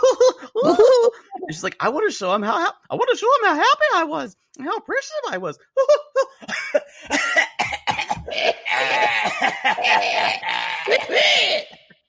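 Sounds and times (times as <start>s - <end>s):
laughter: 0.0s - 1.5s, 8.2s - 12.0s
speech: 1.5s - 7.4s, 8.4s - 11.8s
woman's loud coughing fit: 6.5s - 10.4s.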